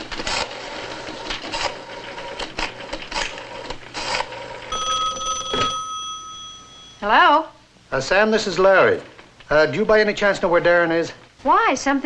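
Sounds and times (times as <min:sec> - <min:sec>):
telephone bell-like ring: 0:04.7 - 0:07.2
speech: 0:07.0 - 0:12.0.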